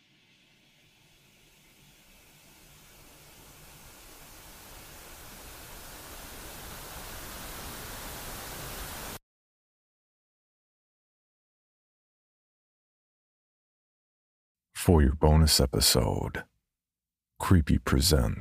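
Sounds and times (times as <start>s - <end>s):
broadband television static hiss: 0.7s - 9.2s
speech: 14.8s - 16.5s, 17.4s - 18.3s.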